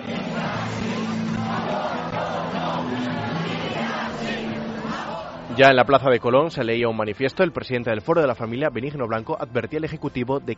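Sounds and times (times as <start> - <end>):
large protest crowd shouting and booing: 0.0 - 6.2
speech: 5.6 - 10.5.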